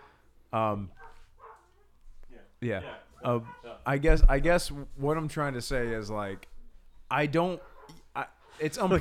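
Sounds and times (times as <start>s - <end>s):
speech: 0.5s - 1.0s, 2.6s - 6.5s, 7.1s - 8.9s
dog barking: 1.0s - 3.9s, 7.6s - 8.7s.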